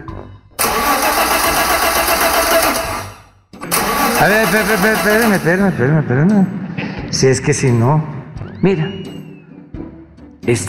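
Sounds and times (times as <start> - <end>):
car engine cranking and starting: 0.6 - 5.8
speech: 4.2 - 9.0, 10.4 - 10.6.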